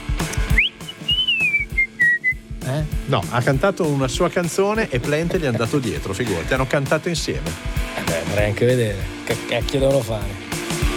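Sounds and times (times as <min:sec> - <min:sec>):
person whistling a short tune: 0:00.4 - 0:02.5
speech: 0:02.7 - 0:10.5.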